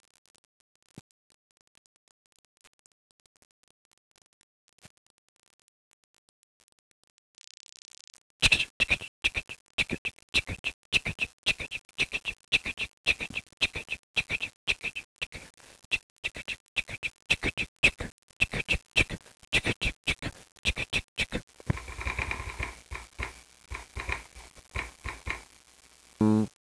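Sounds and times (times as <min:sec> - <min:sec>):
remix drums: 0:08.4 - 0:25.6.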